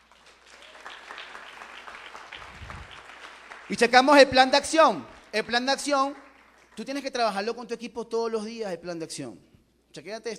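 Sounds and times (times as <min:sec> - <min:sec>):
audience applause at a motivational seminar on building successful teams: 0:00.0 - 0:06.8
speech: 0:03.7 - 0:06.2, 0:06.8 - 0:10.3.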